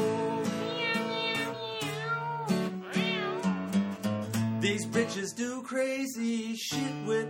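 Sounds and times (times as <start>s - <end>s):
voice imitating cat meows sung over music: 0.2s - 3.8s
speech: 4.7s - 7.2s.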